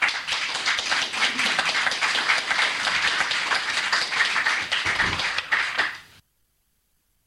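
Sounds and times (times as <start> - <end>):
audience applause after a speech: 0.0 - 6.1.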